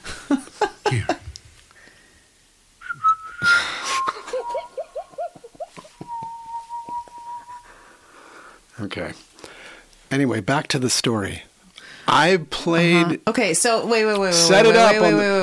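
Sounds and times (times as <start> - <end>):
speech: 0.9 - 1.2, 9.0 - 9.2, 10.1 - 11.5, 12.1 - 15.4
person whistling a short wavering melody: 2.8 - 7.7
soft chuckling: 3.4 - 6.1.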